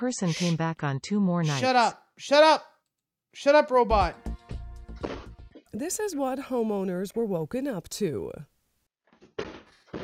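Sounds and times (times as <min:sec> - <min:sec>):
speech: 0:00.0 - 0:02.7, 0:03.3 - 0:04.3, 0:05.0 - 0:08.5
person kicking and banging on a front door: 0:09.4 - 0:10.0.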